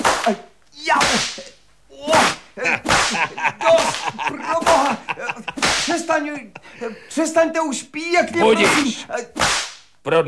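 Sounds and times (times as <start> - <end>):
whip cracking: 0.0 - 0.4, 1.0 - 1.5, 2.1 - 6.1, 8.6 - 9.9
speech: 0.2 - 5.0, 6.0 - 10.2
laughter: 2.6 - 7.2.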